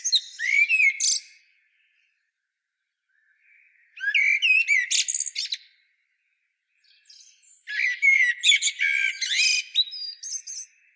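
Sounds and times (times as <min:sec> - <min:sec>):
common blackbird Turdus merula singing: 0:00.0 - 0:10.9.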